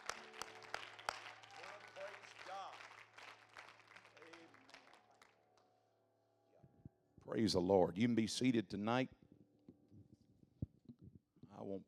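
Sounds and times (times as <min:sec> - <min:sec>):
audience clapping: 0:00.0 - 0:05.7
speech: 0:07.3 - 0:09.2.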